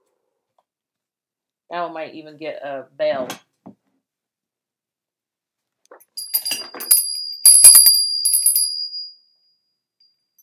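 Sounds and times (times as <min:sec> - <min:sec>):
speech: 0:01.7 - 0:03.5
small bright bell ringing: 0:06.2 - 0:10.4.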